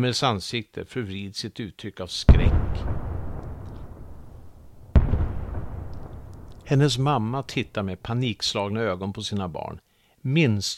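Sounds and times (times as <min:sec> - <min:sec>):
speech: 0:00.0 - 0:03.0, 0:06.7 - 0:10.7
sharp heavy distant explosion: 0:02.3 - 0:08.0.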